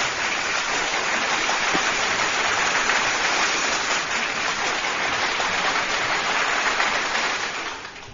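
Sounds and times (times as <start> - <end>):
crowd applause: 0.0 - 8.1.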